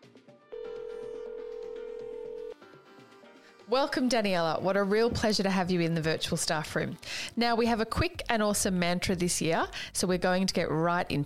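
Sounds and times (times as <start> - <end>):
soft rhythmic background: 0.5 - 11.2
telephone tone while dialing a call: 0.6 - 2.5
speech: 3.7 - 11.2.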